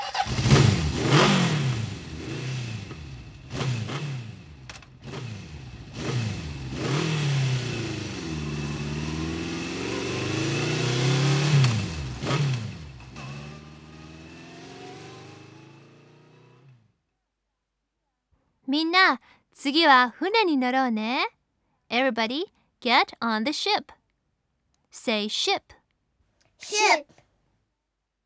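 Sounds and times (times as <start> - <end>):
motorcycle engine revving: 0.0 - 16.9
speech: 18.7 - 24.0, 24.9 - 25.8, 26.6 - 27.2.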